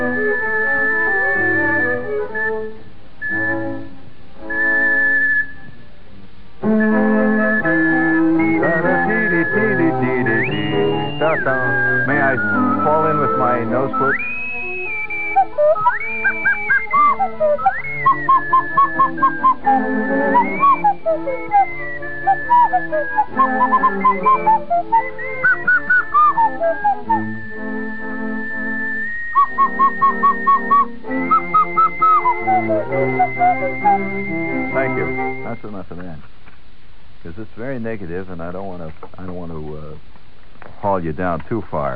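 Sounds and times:
classical music from a record player: 0.0s - 2.8s, 6.6s - 35.5s
slide whistle played by an elderly woman: 0.0s - 5.8s, 6.6s - 35.7s
speech: 41.1s - 41.9s.

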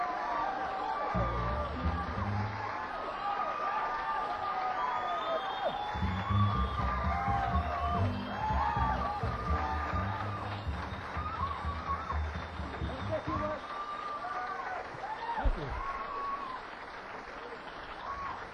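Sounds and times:
deep shouts: 0.0s - 16.6s
audience applauding and cheering: 0.0s - 18.5s
whoops and whistles from the crowd: 3.1s - 16.6s.

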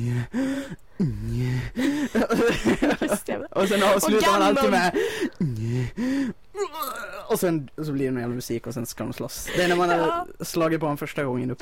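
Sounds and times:
voice imitating heavy villain-like breathing through the nose: 0.0s - 2.2s, 4.9s - 6.4s
laughter: 1.8s - 5.4s
speech: 3.6s - 5.5s, 7.3s - 11.5s.

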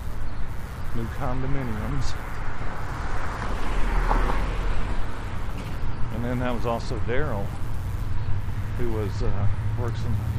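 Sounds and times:
steady broad roar of street traffic with deep low rumble: 0.0s - 10.3s
speech: 1.0s - 2.4s, 6.2s - 7.6s, 8.8s - 10.3s.

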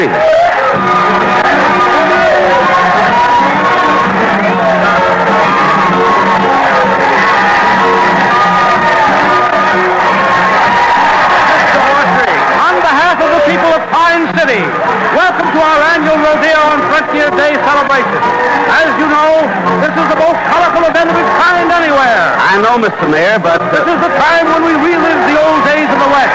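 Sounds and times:
speech: 0.0s - 0.3s, 22.8s - 23.8s
shouts and whoops: 0.0s - 22.6s, 23.2s - 26.3s
large crowd yelling and cheering: 0.0s - 26.3s.

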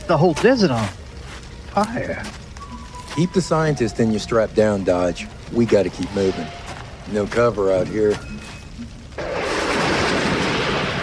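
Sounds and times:
speech: 0.1s - 1.0s, 1.8s - 2.4s, 3.2s - 8.4s
thunder from lightning over a desert: 3.2s - 11.0s.

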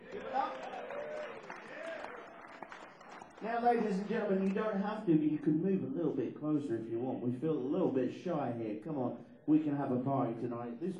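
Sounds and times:
voices and cheers: 0.0s - 4.5s
audience applause: 0.0s - 4.7s
speech: 3.4s - 10.9s.

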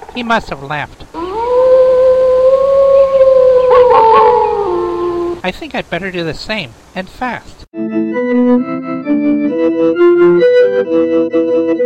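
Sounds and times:
speech: 0.2s - 1.0s, 5.4s - 7.6s, 8.5s - 11.8s
wolf howling: 1.1s - 5.4s.

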